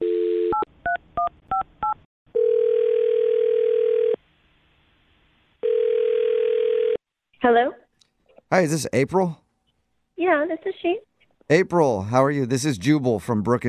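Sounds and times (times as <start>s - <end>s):
telephone dial tone: 0.0s - 0.7s, 2.3s - 4.2s, 5.6s - 7.0s
speech: 7.4s - 7.8s, 8.5s - 9.4s, 10.2s - 13.6s.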